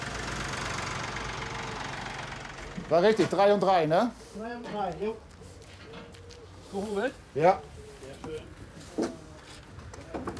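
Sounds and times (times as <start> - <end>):
tractor engine idling: 0.0 - 4.1
speech: 2.8 - 5.3, 6.7 - 9.2.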